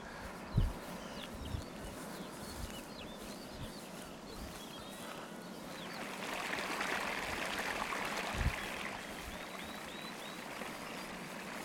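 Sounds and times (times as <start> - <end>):
faint bird chirps: 0.0 - 6.1, 8.6 - 11.2
fast-flowing limestone stream rushing and burbling: 5.8 - 11.6.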